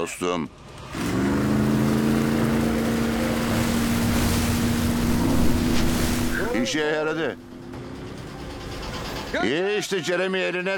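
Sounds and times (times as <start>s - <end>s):
speech: 0.0s - 1.2s, 6.6s - 7.5s, 9.3s - 10.7s
starboard and port boat engines running: 0.6s - 9.6s
water noise: 1.1s - 7.8s.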